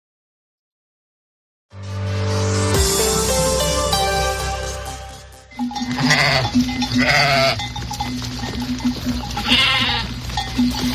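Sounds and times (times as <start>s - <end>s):
sustained tonal chord: 2.7s - 9.3s
small flock of sheep bleating: 5.8s - 7.8s, 9.2s - 10.4s.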